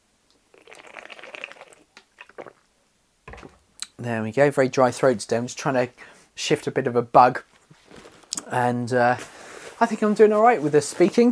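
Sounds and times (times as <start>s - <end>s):
wet sipping and slurping of water: 0.5s - 2.6s
speech: 4.0s - 7.5s, 8.5s - 11.3s.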